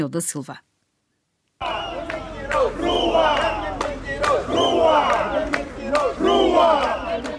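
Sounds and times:
speech: 0:00.0 - 0:00.7
large crowd of protesting teachers singing and shouting at a march: 0:01.6 - 0:07.3
sharp rhythmic claps or beats: 0:01.6 - 0:07.3.

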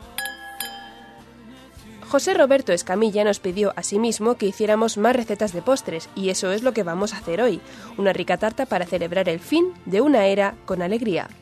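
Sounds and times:
glasses clinking in a toast: 0:00.0 - 0:01.3
speech: 0:02.1 - 0:11.4.

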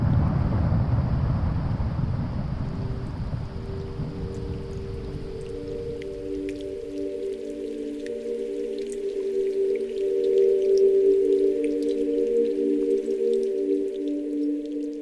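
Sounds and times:
glacier ice calving rumble: 0:00.0 - 0:11.4
low moaning tones: 0:00.0 - 0:15.0
dripping: 0:03.6 - 0:15.0.

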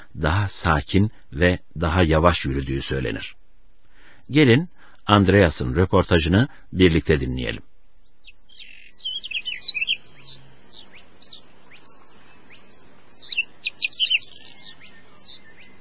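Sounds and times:
speech: 0:00.2 - 0:03.4, 0:04.3 - 0:07.7
rare birds singing and chirping in a nature area in southern Mecklenburg Germany: 0:08.0 - 0:15.7.

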